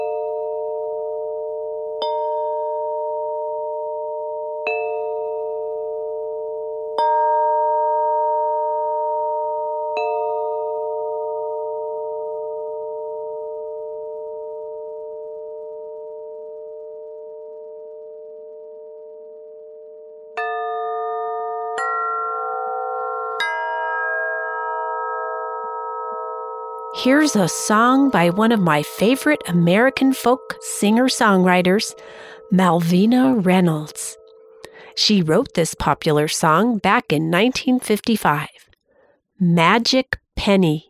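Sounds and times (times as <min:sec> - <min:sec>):
gentle chimes ringing with long shimmering tones: 0:00.0 - 0:13.0, 0:20.4 - 0:35.4
speech: 0:27.0 - 0:34.2, 0:35.0 - 0:38.5, 0:39.4 - 0:40.8.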